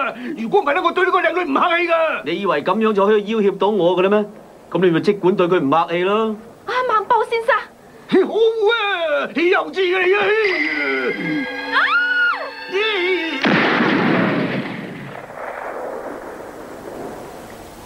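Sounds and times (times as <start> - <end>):
speech: 0.1 - 7.5, 8.1 - 11.9
gunfire in an animated action cartoon: 13.4 - 16.0
short sharp gunshot cracks in an animated cartoon: 13.4 - 17.3.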